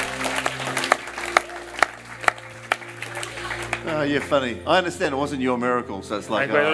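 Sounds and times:
small audience clapping in rhythm: 0:00.0 - 0:04.6
speech: 0:04.0 - 0:06.7.

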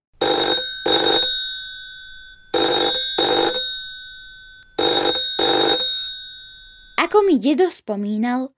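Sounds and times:
old-fashioned telephone bell ringing: 0:00.2 - 0:07.4
speech: 0:07.0 - 0:08.5.

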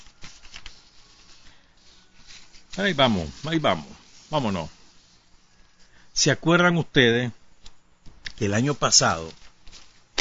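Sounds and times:
stacks of research papers being shuffled and handled: 0:00.0 - 0:04.7, 0:07.6 - 0:10.1
speech: 0:02.8 - 0:04.8, 0:06.2 - 0:07.4, 0:08.4 - 0:09.4.

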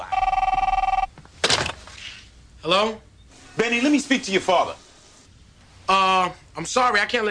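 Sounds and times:
telephone bell ringing with electronic warble: 0:00.0 - 0:01.1
speech: 0:02.6 - 0:04.8, 0:05.9 - 0:07.2.

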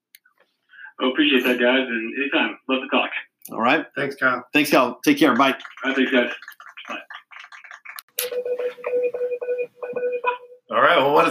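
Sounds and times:
speech: 0:01.0 - 0:07.1, 0:10.7 - 0:11.2
telephone dialing sound effect jingle announcing a caller: 0:08.2 - 0:10.5.

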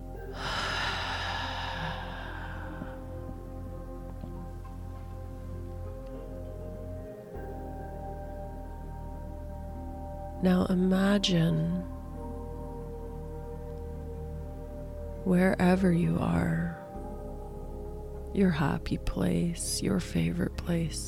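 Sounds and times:
low humming drone: 0:00.0 - 0:19.5
deep breath during a guided breathing exercise: 0:00.3 - 0:03.4
speech: 0:10.4 - 0:11.9, 0:15.3 - 0:16.6, 0:18.4 - 0:21.0.

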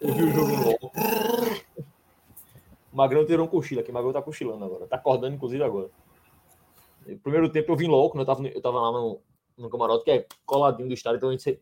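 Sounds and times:
dog growling: 0:00.0 - 0:01.7
speech: 0:03.0 - 0:06.1, 0:07.1 - 0:11.6.

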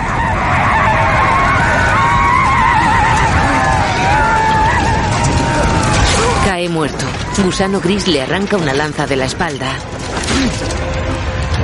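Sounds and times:
horses whinnying and neighing: 0:00.0 - 0:07.8
rumble of a charging cavalry group rushing past: 0:00.0 - 0:11.6
speech: 0:06.8 - 0:10.8.

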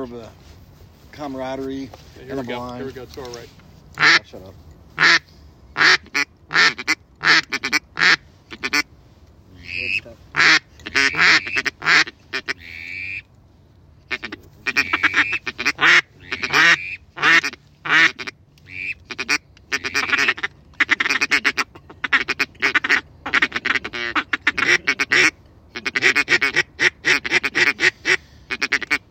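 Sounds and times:
speech: 0:00.0 - 0:05.2
ducks quacking near a hunting blind during a duck hunt: 0:04.0 - 0:04.2, 0:05.0 - 0:08.9, 0:09.5 - 0:13.3, 0:14.1 - 0:29.0.

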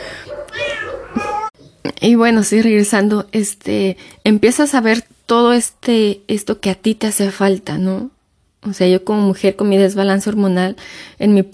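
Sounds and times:
cat meowing: 0:00.4 - 0:01.5
speech: 0:02.0 - 0:11.5.

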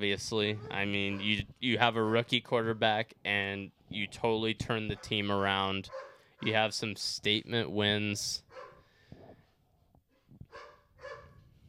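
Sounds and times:
speech: 0:00.0 - 0:08.4
faint dog barking: 0:00.5 - 0:02.3, 0:04.9 - 0:05.3, 0:05.9 - 0:06.5, 0:08.5 - 0:08.9, 0:10.2 - 0:11.4.

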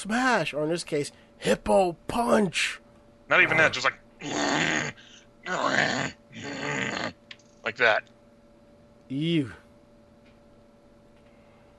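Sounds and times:
speech: 0:00.0 - 0:07.0, 0:07.6 - 0:08.2, 0:09.1 - 0:09.6
person voicing rough guttural growls imitating a boxer character: 0:04.2 - 0:07.2.

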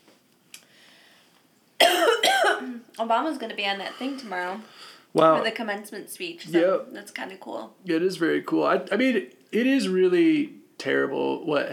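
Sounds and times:
person coughing harshly: 0:01.8 - 0:02.9
speech: 0:02.6 - 0:11.7.

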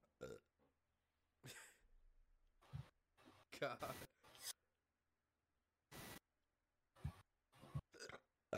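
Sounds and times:
person burping after drinking beer: 0:00.2 - 0:00.5, 0:07.9 - 0:08.5
speech: 0:00.2 - 0:00.5, 0:03.6 - 0:04.1.

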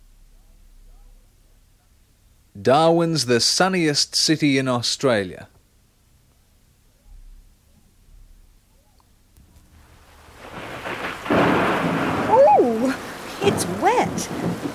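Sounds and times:
loud downpour hiss: 0:02.4 - 0:05.5, 0:09.4 - 0:14.7
speech: 0:02.6 - 0:05.6.

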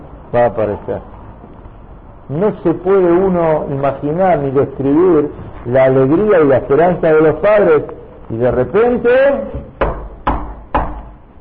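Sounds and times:
speech: 0:00.3 - 0:01.1, 0:02.3 - 0:09.7
knocks on a wooden door: 0:09.5 - 0:11.2.

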